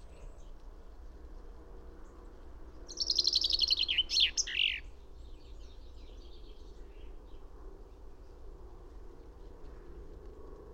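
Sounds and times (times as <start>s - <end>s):
common chaffinch Fringilla coelebs singing: 2.9s - 4.8s.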